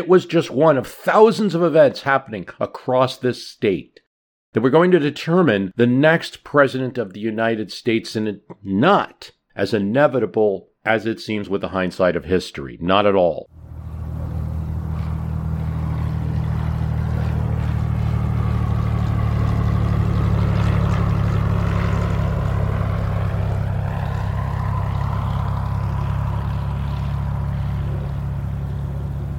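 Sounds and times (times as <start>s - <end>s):
speech: 0.0s - 13.6s
small chartered propeller airplane engine droning while taxiing: 13.5s - 29.3s.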